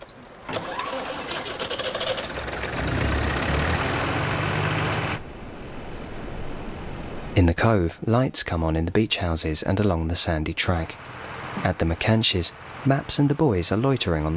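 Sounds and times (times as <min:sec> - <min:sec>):
generator engine starting up beside a caravan: 0:00.5 - 0:05.2, 0:10.7 - 0:14.3
speech: 0:07.4 - 0:14.3.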